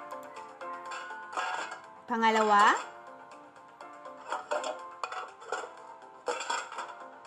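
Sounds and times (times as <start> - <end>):
metal cooking pot falling and bouncing: 0.8 - 2.9, 4.1 - 7.0
speech: 2.1 - 2.9.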